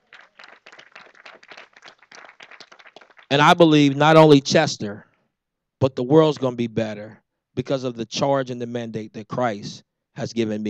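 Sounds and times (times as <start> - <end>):
crowd clapping: 0.0 - 4.2
speech: 3.3 - 5.1, 5.8 - 10.6.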